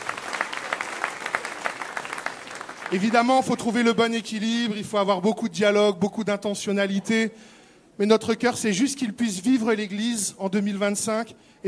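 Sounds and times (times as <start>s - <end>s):
audience at a church gathering applauding: 0.0s - 3.8s
speech: 2.9s - 11.6s.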